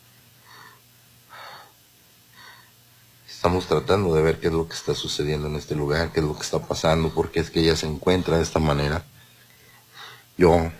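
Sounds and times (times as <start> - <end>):
low steady hum: 0.0 - 10.7
woman breathing heavily and rapidly: 0.4 - 2.8, 9.2 - 10.3
speech: 3.4 - 9.1, 10.4 - 10.7.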